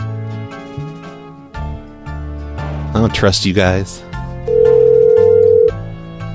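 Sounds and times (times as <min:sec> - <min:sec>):
speech: 0:03.0 - 0:04.1
telephone line tone as a call is placed: 0:04.5 - 0:05.8.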